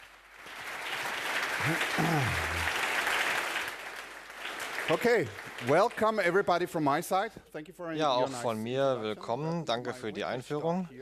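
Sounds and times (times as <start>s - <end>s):
crowd applauding a speaker: 0.0s - 6.4s
speech: 1.6s - 2.7s, 4.9s - 11.0s.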